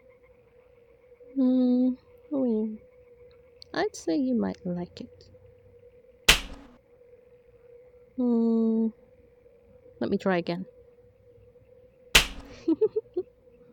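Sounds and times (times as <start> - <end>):
speech: 1.4 - 2.0, 3.8 - 5.3, 8.2 - 9.0, 10.0 - 10.8
slaps on skin: 6.3 - 6.8, 12.2 - 12.6.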